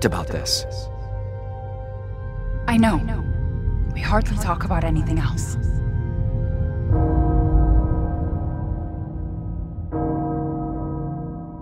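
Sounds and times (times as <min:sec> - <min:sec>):
speech: 0:00.0 - 0:00.9, 0:02.7 - 0:03.2, 0:04.0 - 0:05.8
low rumbling background: 0:00.0 - 0:10.4
large castle bell tolling in a video game: 0:06.9 - 0:11.6.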